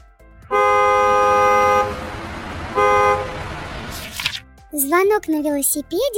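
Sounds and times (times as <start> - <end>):
car horn honking: 0.5 - 3.9
speech: 4.8 - 6.1.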